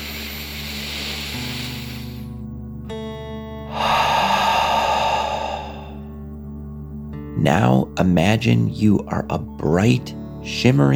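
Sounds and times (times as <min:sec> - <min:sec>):
deep breath in and out during a guided relaxation exercise: 0:00.0 - 0:02.5, 0:03.6 - 0:06.2
speech: 0:07.4 - 0:10.9.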